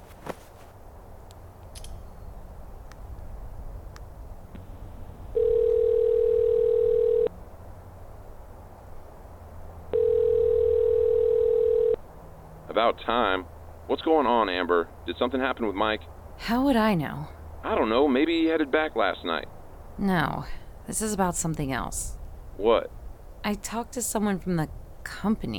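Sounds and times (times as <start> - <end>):
telephone tones of an outgoing call made from a high spot near a highway: 5.3 - 7.3, 9.9 - 12.0
speech: 12.8 - 25.5.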